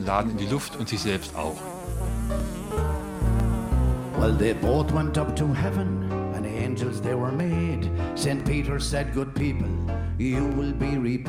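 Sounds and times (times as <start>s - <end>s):
speech: 0.0s - 2.9s, 4.2s - 6.0s, 6.6s - 11.2s
fly buzzing in a shop: 0.4s - 5.1s.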